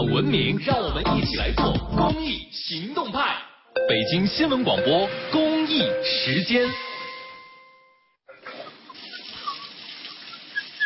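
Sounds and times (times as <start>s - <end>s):
speech: 0.2s - 6.9s
brief tonal lead-in: 3.8s - 8.1s
water running steadily from an open household tap: 8.7s - 10.8s.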